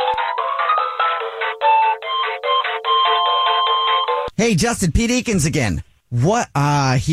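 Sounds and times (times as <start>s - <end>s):
telephone ringing with an electronic melodic ringtone: 0.0s - 4.3s
speech: 4.4s - 7.1s.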